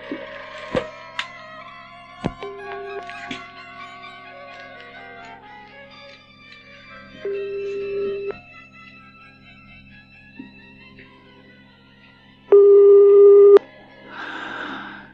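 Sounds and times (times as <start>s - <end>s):
laughter: 0.0s - 9.6s
telephone ringing with long electronic tones: 2.4s - 3.1s, 7.2s - 8.4s, 12.5s - 13.6s.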